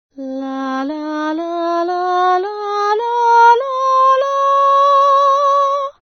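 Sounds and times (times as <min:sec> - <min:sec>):
person singing in chest and head voice: 0:00.1 - 0:06.1.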